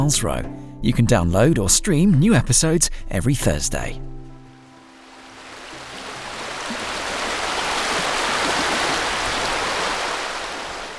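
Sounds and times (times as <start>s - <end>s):
speech: 0.0s - 4.2s
River Rye water gushing and babbling in North Yorkshire England: 4.5s - 10.9s.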